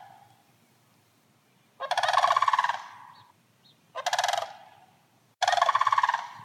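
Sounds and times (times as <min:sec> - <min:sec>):
sandhill cranes giving rolling rattling bugle calls in a backyard: 0:01.8 - 0:03.3, 0:03.9 - 0:06.4.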